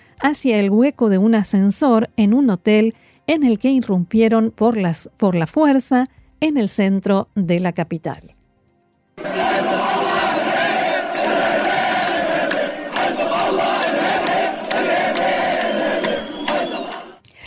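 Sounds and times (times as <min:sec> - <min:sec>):
speech: 0:00.2 - 0:08.4
large protest crowd chanting and shouting in Beirut: 0:09.2 - 0:17.2.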